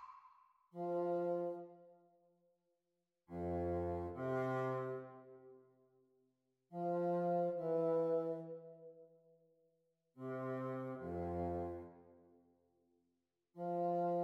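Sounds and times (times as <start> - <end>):
bassoon duets practised at speed: 0.7 - 1.9, 3.3 - 5.5, 6.7 - 8.9, 10.2 - 12.0, 13.6 - 14.2.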